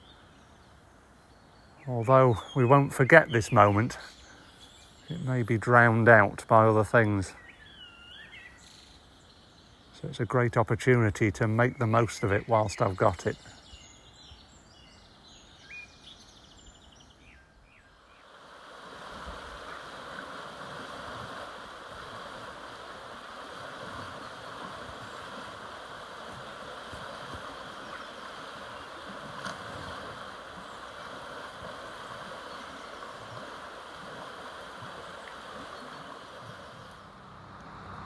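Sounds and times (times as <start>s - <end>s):
birds chirping: 0.0s - 18.4s, 19.4s - 38.0s
speech: 1.8s - 4.2s, 5.1s - 7.4s, 10.0s - 13.6s
flowing water of a river near a village: 18.1s - 38.0s.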